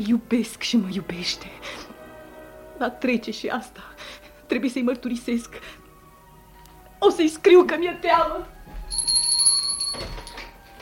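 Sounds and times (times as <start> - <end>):
speech: 0.0 - 1.9, 2.8 - 5.8, 7.0 - 8.6
bell rung to summon a servant: 8.9 - 10.6.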